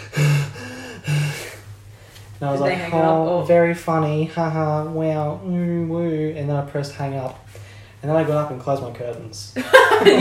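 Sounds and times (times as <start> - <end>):
person imitating heavy breathing of a prank caller: 0.0 - 2.2, 7.5 - 8.0
speech: 2.4 - 7.4, 8.0 - 10.1
laughter: 9.6 - 10.1.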